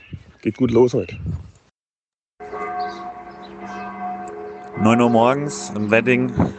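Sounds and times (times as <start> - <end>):
speech: 0.4 - 1.5, 4.8 - 6.5
church bells ringing in Wedding: 2.4 - 6.5.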